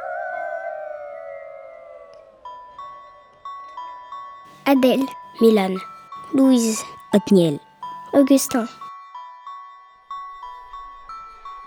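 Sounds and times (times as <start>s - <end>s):
howling: 0.0s - 2.4s
speech: 4.7s - 7.6s, 8.2s - 8.8s.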